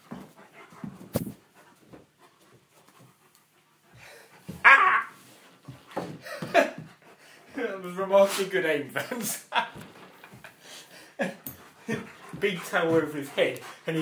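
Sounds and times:
dog panting while playing: 0.0s - 4.6s, 5.3s - 14.0s
dog whining: 4.5s - 5.2s
speech: 7.9s - 9.9s, 12.4s - 14.0s.

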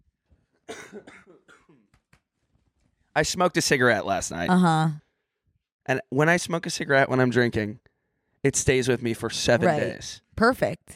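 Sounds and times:
raspy fit of heavy hacking coughing: 0.7s - 1.8s
speech: 3.2s - 5.0s, 5.8s - 10.9s.

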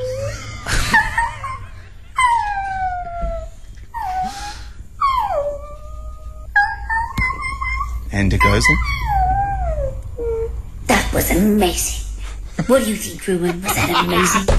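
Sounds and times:
laughter: 0.2s - 2.0s, 13.4s - 14.5s
person imitating a puppy howling and whimpering: 2.2s - 10.6s
speech: 8.2s - 9.0s, 11.2s - 12.0s, 12.7s - 14.5s.

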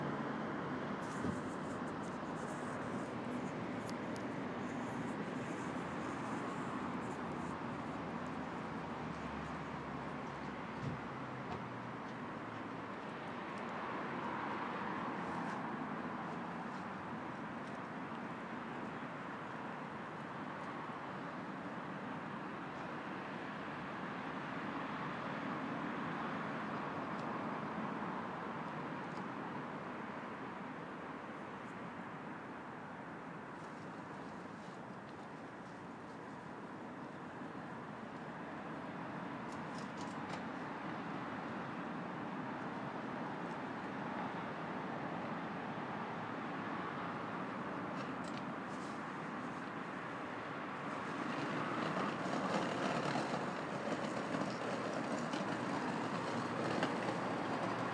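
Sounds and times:
morning car park ambience in Hull: 0.0s - 57.9s.

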